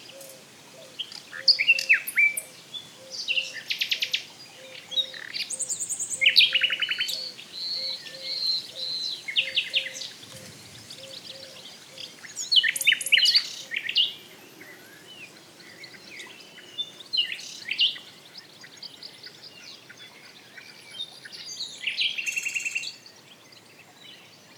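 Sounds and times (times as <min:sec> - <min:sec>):
Luscinia megarhynchos common nightingale singing: 0:00.0 - 0:23.6.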